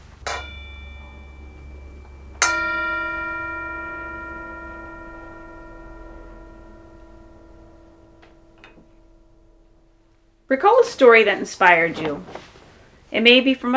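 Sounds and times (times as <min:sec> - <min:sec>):
meditation bell ringing: 0:00.0 - 0:11.3
speech: 0:10.5 - 0:12.4, 0:13.1 - 0:13.7.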